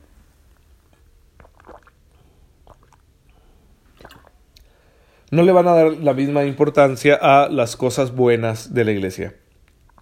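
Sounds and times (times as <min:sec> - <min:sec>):
faint hum: 0:00.0 - 0:10.0
person sipping water: 0:00.6 - 0:04.8, 0:09.6 - 0:10.0
speech: 0:05.3 - 0:09.4.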